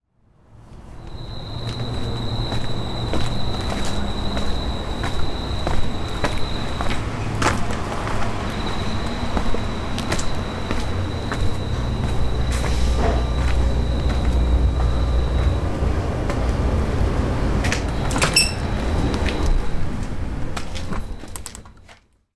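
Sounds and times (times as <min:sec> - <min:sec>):
insects outside: 0:00.5 - 0:21.8.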